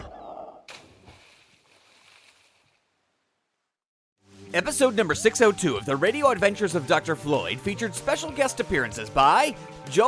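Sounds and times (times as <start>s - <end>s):
churning wash of sloshing water: 0.7s - 2.9s
speech: 4.5s - 10.0s.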